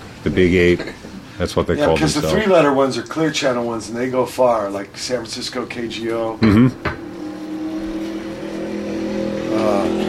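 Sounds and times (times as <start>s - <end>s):
speech: 0.2s - 7.0s
motorcycle engine revving: 5.5s - 10.0s.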